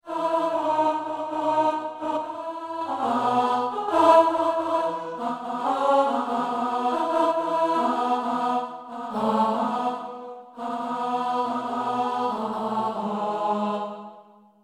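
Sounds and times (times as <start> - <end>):
alto voice singing a verse: 0.0 - 14.5.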